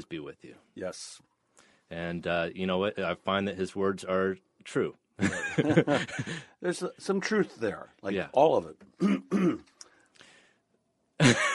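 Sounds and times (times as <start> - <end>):
speech: 0.0 - 1.3, 1.9 - 9.7
laughter: 5.2 - 6.5
person coughing: 9.0 - 9.8.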